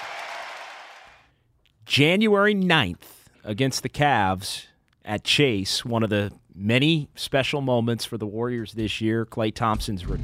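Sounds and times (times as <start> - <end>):
large arena crowd roaring and cheering: 0.0 - 1.2
speech: 1.9 - 10.2.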